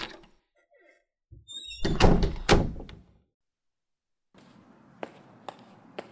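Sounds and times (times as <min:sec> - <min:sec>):
apartment door creaking on its hinges: 0:01.4 - 0:03.1
heavy apartment door shutting with a thud and rattle: 0:01.8 - 0:03.0.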